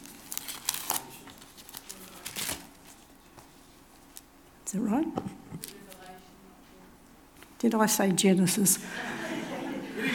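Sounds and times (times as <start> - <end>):
paper sheets rustling while being shuffled and handled: 0.0 - 4.2
speech: 4.7 - 5.8, 7.6 - 9.1
laughter: 8.8 - 10.1.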